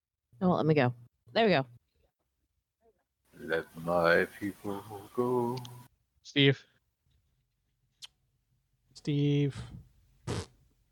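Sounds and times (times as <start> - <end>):
speech: 0.4 - 1.8, 3.4 - 6.7, 9.0 - 10.5
fart: 10.2 - 10.6.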